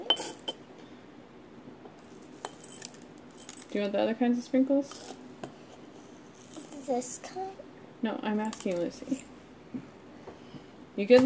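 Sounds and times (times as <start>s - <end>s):
sprinkle spoon clinking as it is put back: 2.4s - 3.7s
speech: 3.7s - 5.2s, 6.9s - 9.9s, 11.0s - 11.2s.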